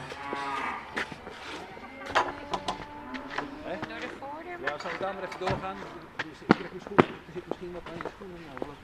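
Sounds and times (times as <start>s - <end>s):
cows mooing inside a stable: 0.0s - 4.2s
dull barn ambience: 0.0s - 8.8s
speech: 5.0s - 8.8s.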